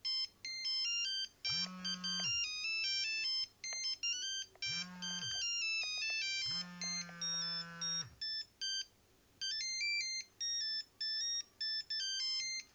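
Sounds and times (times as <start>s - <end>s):
Nokia 5510 mobile phone ringtone: 0.0s - 12.7s.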